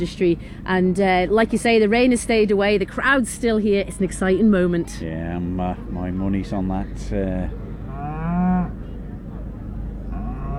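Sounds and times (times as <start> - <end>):
speech: 0.0 - 7.6
Simmental beef cow mooing at a cattle show: 7.9 - 8.8, 10.1 - 10.5.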